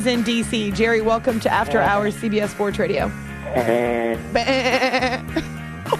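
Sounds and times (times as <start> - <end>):
speech: 0.0 - 5.6
sheep or goat bleating: 3.5 - 5.4.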